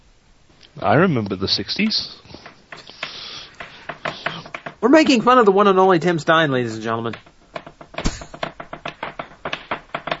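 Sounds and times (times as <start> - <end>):
speech: 0.8 - 2.2, 4.8 - 7.3
fingers drumming on a desk: 2.3 - 5.4, 6.9 - 10.1.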